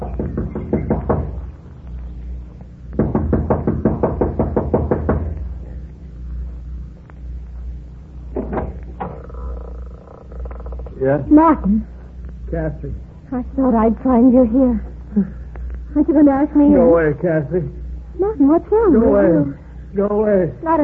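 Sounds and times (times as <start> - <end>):
impatient knocking on a lodge's wooden front door: 0.0 - 1.5, 3.0 - 5.4, 8.3 - 9.2
low rumble: 0.0 - 20.8
speech: 11.0 - 11.9, 12.5 - 20.8.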